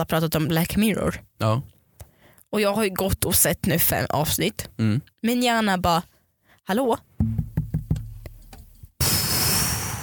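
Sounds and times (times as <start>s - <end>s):
speech: 0.0s - 1.8s, 2.5s - 6.1s, 6.7s - 7.4s
sharp knocks: 7.2s - 8.8s
loud sustained burst of harsh noise: 9.0s - 10.0s.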